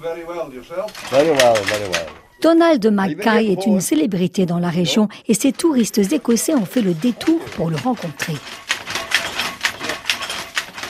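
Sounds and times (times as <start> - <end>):
speech: 0.0 - 8.7
shuttle of a weaving loom thrown back and forth: 0.8 - 2.2, 5.3 - 10.8.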